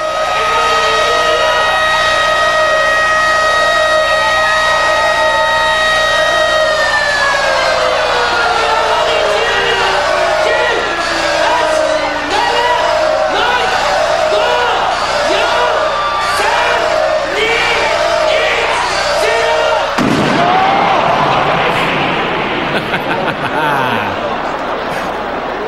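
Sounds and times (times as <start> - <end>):
laughter: 0.0 - 20.0, 20.6 - 25.6
sustained whistling tones: 0.0 - 23.2
crowd roaring and cheering at a hardcore wrestling match: 0.0 - 25.6
explosive-rigged wrestling ring exploding: 20.0 - 23.6.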